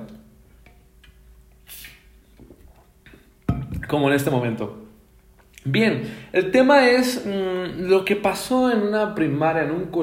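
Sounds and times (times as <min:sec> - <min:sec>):
person sipping water: 0:01.6 - 0:03.2
speech: 0:03.9 - 0:04.9, 0:05.6 - 0:10.0.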